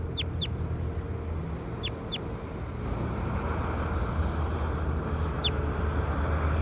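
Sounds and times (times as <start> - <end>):
short high bird chirps: 0.0 - 0.6
steady low rumbling noise: 0.0 - 6.6.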